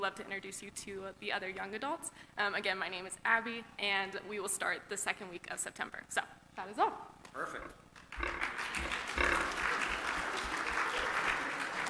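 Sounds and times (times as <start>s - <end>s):
speech: 0.0s - 9.0s
room full of people clapping: 8.0s - 11.8s.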